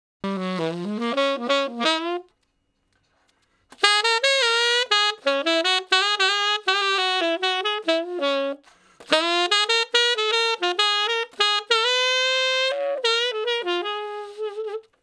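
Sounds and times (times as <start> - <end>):
slow blues on tenor sax: 0.2 - 2.5, 3.1 - 15.0.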